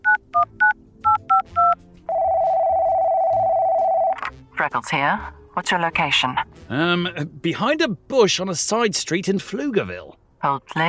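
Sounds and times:
satellite phone keypad beeps from a dog collar: 0:00.0 - 0:04.2
satellite phone line ringing tone: 0:00.4 - 0:04.2
speech: 0:04.7 - 0:10.8.

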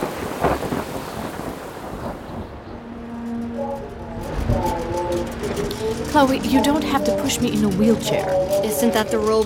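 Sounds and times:
steady rain in a thunderstorm: 0:00.0 - 0:07.1
deep thunder rumbling in a thunderstorm: 0:00.0 - 0:08.4
speech: 0:06.1 - 0:09.4.

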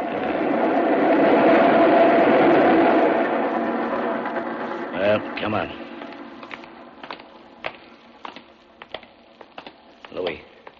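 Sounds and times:
express train thundering through a station: 0:00.0 - 0:07.0
speech: 0:05.4 - 0:05.8.

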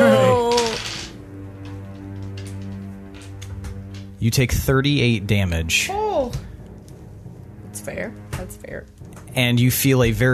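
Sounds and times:
many dice rolling and clattering: 0:00.4 - 0:04.0
speech: 0:04.2 - 0:06.5, 0:07.9 - 0:10.3.

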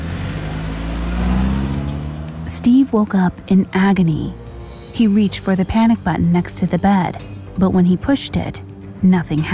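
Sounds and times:
car engine revving as the car drives away: 0:00.0 - 0:06.8
speech: 0:02.6 - 0:04.4, 0:05.0 - 0:09.5.

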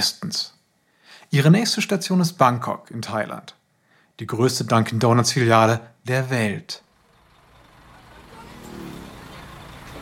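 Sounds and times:
speech: 0:00.0 - 0:00.5, 0:01.3 - 0:03.6, 0:04.2 - 0:06.8
motorcycles and buses rushing past on a street in Bangkok, Thailand: 0:06.9 - 0:09.9.

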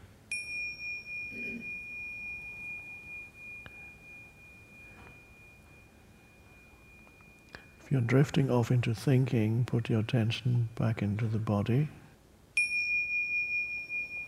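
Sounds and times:
meditation bell struck during a meditation: 0:00.2 - 0:08.7, 0:12.6 - 0:14.2
speech: 0:07.9 - 0:12.0.

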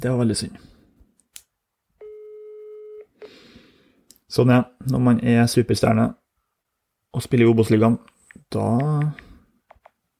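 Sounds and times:
speech: 0:00.0 - 0:00.8, 0:04.3 - 0:06.2, 0:07.1 - 0:09.2
outgoing phone call electronic ringback tone: 0:02.0 - 0:03.1.

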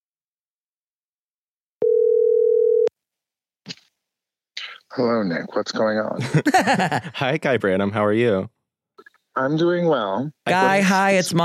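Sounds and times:
electronic telephone ringing tone: 0:01.8 - 0:02.9
speech: 0:05.0 - 0:08.6, 0:09.4 - 0:11.4
laughter: 0:06.2 - 0:07.4.

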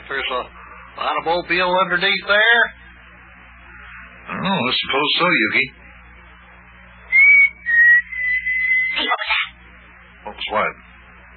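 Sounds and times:
low hum: 0:00.0 - 0:11.3
speech: 0:00.1 - 0:02.8, 0:04.4 - 0:05.8, 0:10.4 - 0:10.8
person whistling a signal: 0:07.1 - 0:09.0.

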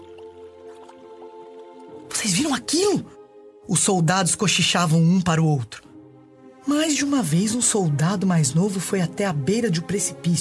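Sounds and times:
water bubbling and plopping in a huge cauldron on a mountain trail: 0:00.0 - 0:02.1
speech: 0:02.2 - 0:05.9, 0:06.6 - 0:10.4.

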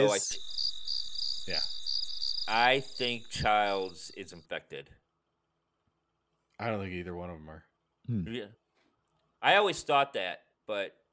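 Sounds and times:
speech: 0:00.0 - 0:00.5, 0:01.5 - 0:01.8, 0:02.5 - 0:05.0, 0:06.6 - 0:08.6, 0:09.4 - 0:11.0
crickets chirping: 0:00.0 - 0:04.5.

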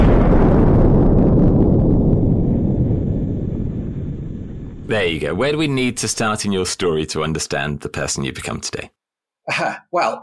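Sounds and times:
loud booming explosion with low rumble: 0:00.0 - 0:06.6
speech: 0:04.9 - 0:10.2.

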